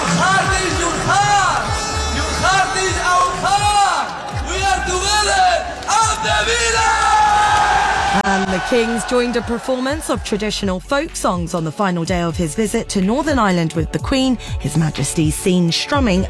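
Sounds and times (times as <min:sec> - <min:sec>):
football fans cheering and chanting at an open-top bus trophy parade: 0:00.0 - 0:10.7
speech: 0:08.6 - 0:16.2.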